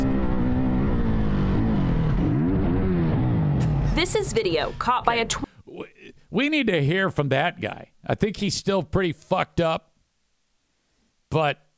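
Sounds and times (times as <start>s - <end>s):
dirt bike engine droning in a crash video: 0.0s - 5.4s
speech: 4.0s - 5.5s, 6.3s - 9.9s, 11.3s - 11.6s.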